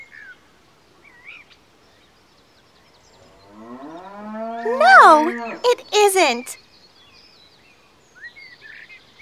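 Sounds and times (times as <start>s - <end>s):
faint birds chirping outdoors: 0.2s - 9.1s
cow mooing: 3.2s - 5.6s
speech: 4.6s - 6.6s.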